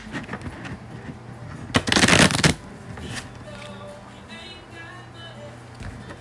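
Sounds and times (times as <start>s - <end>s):
deck of cards being riffle shuffled: 1.7s - 3.7s.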